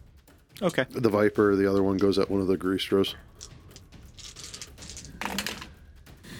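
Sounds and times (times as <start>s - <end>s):
speech: 0.6s - 3.5s
small dice rolling on a hard tabletop during a tabletop role-playing game: 3.4s - 5.8s.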